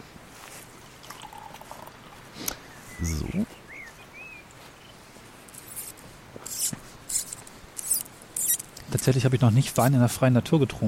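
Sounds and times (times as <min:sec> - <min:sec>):
wine pouring into a glass from an opened bottle: 0:01.0 - 0:02.3
speech: 0:03.0 - 0:03.4, 0:09.0 - 0:10.8.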